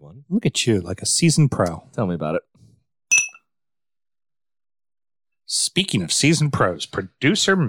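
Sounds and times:
speech: 0.2s - 2.5s, 5.5s - 7.6s
glasses clinking in a toast: 3.1s - 3.4s.

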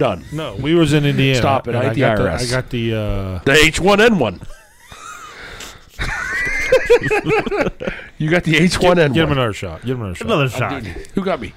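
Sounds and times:
speech: 0.0s - 4.6s, 6.9s - 11.5s
laughter: 4.4s - 8.2s
heavy raspy wheezing breathing: 4.7s - 6.0s.

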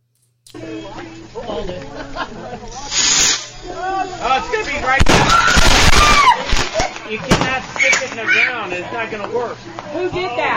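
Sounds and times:
speech: 0.6s - 5.6s, 7.1s - 10.5s
excited voices talking: 0.6s - 10.5s
laughter: 0.7s - 5.0s, 6.0s - 8.7s
firework hissing and spraying sparks: 2.7s - 7.0s.

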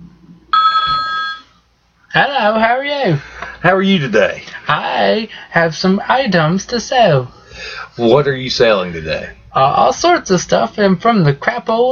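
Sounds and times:
telephone ring sound effect, electronic trill: 0.5s - 1.6s
speech: 2.2s - 11.8s.

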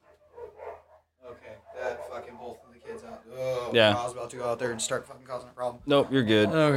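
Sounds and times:
neighbor's dogs and own dogs barking: 0.0s - 3.2s
speech: 3.7s - 6.7s.

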